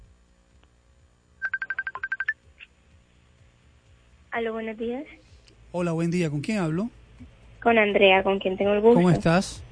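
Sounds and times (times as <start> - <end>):
telephone keypad tones: 1.4 - 2.3
speech: 4.4 - 5.2, 5.7 - 7.0, 7.7 - 9.7.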